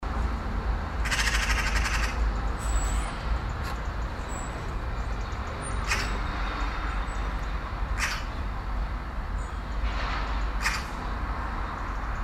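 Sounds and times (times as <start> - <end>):
constant low traffic noise: 0.0 - 12.2
Eurasian magpie Pica pica rattling chatter and rasping call: 1.0 - 2.2, 5.7 - 6.2, 8.0 - 8.4, 10.6 - 10.9.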